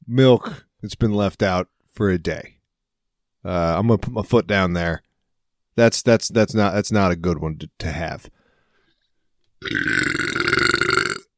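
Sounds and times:
speech: 0.1 - 2.6, 3.4 - 5.1, 5.8 - 8.4, 9.6 - 10.1
long loud burp after drinking a carbonated drink: 9.6 - 11.3.

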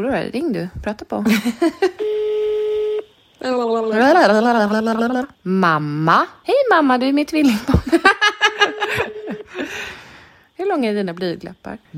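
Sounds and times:
speech: 0.0 - 2.2, 3.4 - 7.9, 10.6 - 11.9
outgoing phone call electronic ringback tone: 2.0 - 3.1, 8.4 - 9.6
laughter: 7.5 - 9.8.

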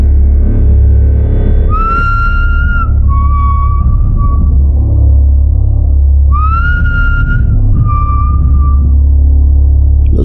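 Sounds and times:
constant low rumble: 0.0 - 10.2
man whistling a short two-part tune: 1.7 - 4.8, 6.3 - 9.0.

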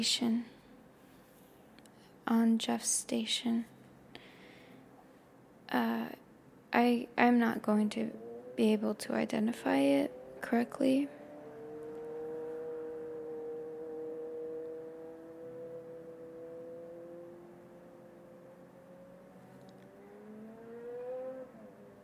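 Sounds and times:
speech: 0.0 - 0.6, 2.3 - 3.7, 5.7 - 11.2
car driving past: 8.0 - 22.0.

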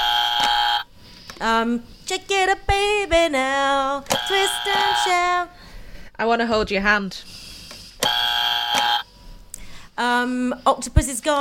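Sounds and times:
quiz game buzzer: 0.0 - 0.9, 4.1 - 5.2, 8.0 - 9.1
speech: 1.4 - 5.6, 6.2 - 7.4, 10.0 - 11.3.

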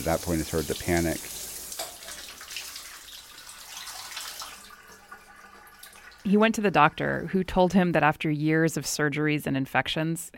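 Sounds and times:
speech: 0.0 - 1.5, 6.2 - 10.3
shower water running in a steady hissing rush: 0.0 - 7.4.

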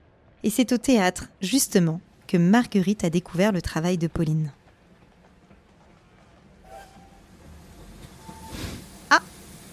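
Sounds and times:
speech: 0.4 - 4.6
steam locomotive chugging: 4.6 - 9.7
thin whistle-like squeals: 6.6 - 7.2, 8.2 - 8.6
hissing steam puffs from the locomotive chimney: 6.6 - 9.7.

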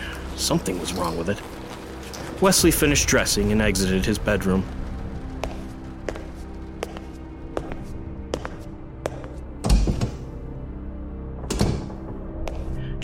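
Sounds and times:
speech: 0.4 - 1.6, 2.4 - 4.8
footsteps on a hard floor in an echoing hallway: 4.8 - 10.3, 11.8 - 12.8
door opening and bumping: 9.6 - 10.3, 11.4 - 12.1.

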